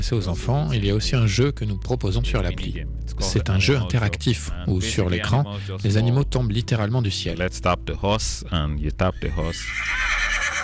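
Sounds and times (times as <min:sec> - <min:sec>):
speech: 0:00.0 - 0:10.2
horse neighing in a children's app game: 0:09.2 - 0:10.6.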